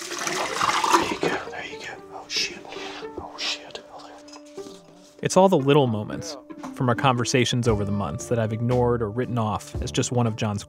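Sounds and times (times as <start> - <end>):
chemical liquid pouring and splashing into a bucket: 0.0 - 1.5
quieter trickles and faint drips: 0.0 - 1.7
hushed breathy voice sounds: 0.9 - 5.2
speech: 5.2 - 10.6.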